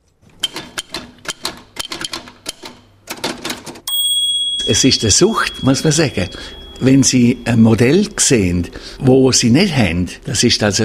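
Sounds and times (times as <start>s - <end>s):
rapid keystrokes clattering on a mechanical typewriter: 0.4s - 3.9s
speech: 4.7s - 10.8s.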